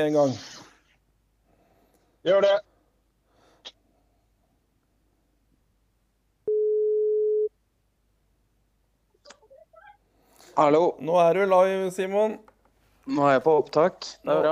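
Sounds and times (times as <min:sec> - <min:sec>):
speech: 0:00.0 - 0:00.6, 0:02.2 - 0:02.7, 0:10.6 - 0:12.5, 0:13.1 - 0:14.5
soft breathy noises: 0:00.3 - 0:05.4
phone call ringing tone: 0:06.5 - 0:07.5.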